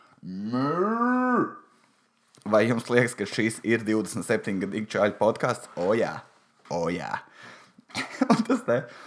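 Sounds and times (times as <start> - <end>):
speech: 0.2 - 0.6, 2.5 - 9.0
person imitating a cow mooing: 0.2 - 1.7
laughter: 7.9 - 8.9.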